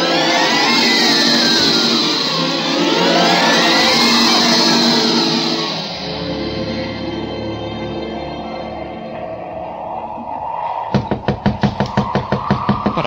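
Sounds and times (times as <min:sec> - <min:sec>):
musical wash: 0:00.0 - 0:11.0
firm knocks on a door: 0:11.0 - 0:13.0.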